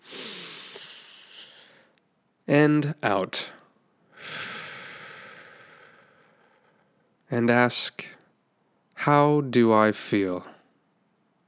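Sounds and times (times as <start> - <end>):
deep breath in through the nose: 0.0 - 1.9, 4.2 - 7.0
speech: 2.5 - 3.6, 7.3 - 8.2, 9.0 - 10.5.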